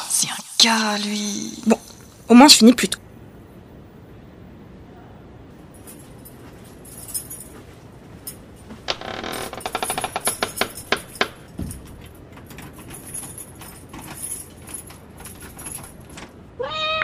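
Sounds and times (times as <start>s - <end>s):
speech: 0.6s - 3.1s
jingling clattering metallic clicks: 8.3s - 16.4s
cat's short rising meow: 16.6s - 17.0s.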